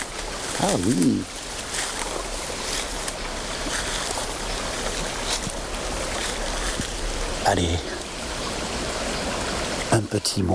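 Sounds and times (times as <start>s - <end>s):
small stream flowing past a boat in the Gaylord forest: 0.0s - 10.5s
speech: 0.6s - 1.4s, 7.5s - 7.9s, 10.0s - 10.5s.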